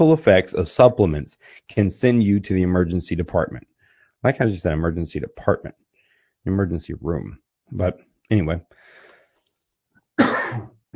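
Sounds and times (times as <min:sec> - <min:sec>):
speech: 0:00.0 - 0:05.8, 0:06.4 - 0:09.0, 0:10.2 - 0:10.9
harsh cough: 0:10.2 - 0:10.9.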